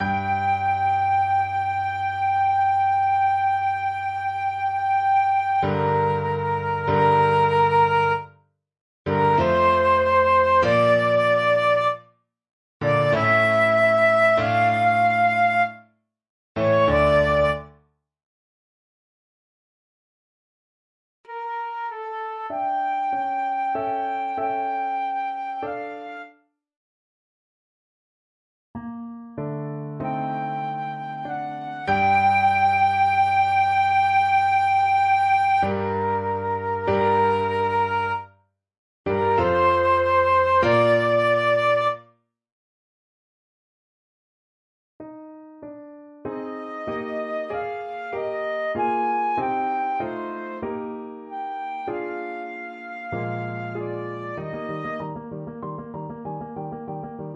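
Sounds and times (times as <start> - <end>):
flute: 0.0 - 8.3, 9.1 - 12.0, 12.8 - 15.8, 16.6 - 17.8, 21.3 - 26.4, 30.0 - 38.3, 39.1 - 42.1, 46.3 - 56.1.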